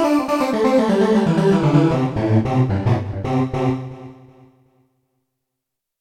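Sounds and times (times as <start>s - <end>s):
Roland D-70 lead vox: 0.1s - 4.3s.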